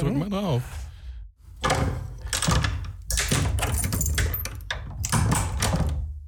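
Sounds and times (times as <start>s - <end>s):
door being handled with clicks: 1.5s - 6.2s
metallic jangling of keys: 1.6s - 6.0s.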